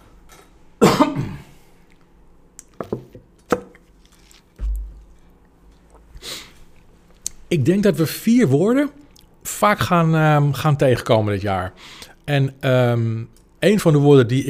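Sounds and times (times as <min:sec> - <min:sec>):
person clearing throat: 0:00.8 - 0:01.6
speech: 0:07.5 - 0:09.0, 0:09.6 - 0:14.4.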